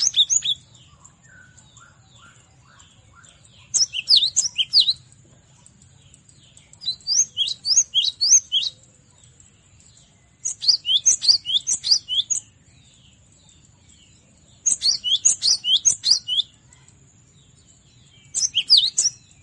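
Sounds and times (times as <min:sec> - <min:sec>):
Cinereous tit singing: 0:00.0 - 0:05.1, 0:06.8 - 0:08.8, 0:10.5 - 0:12.5, 0:14.6 - 0:16.6, 0:18.2 - 0:19.4.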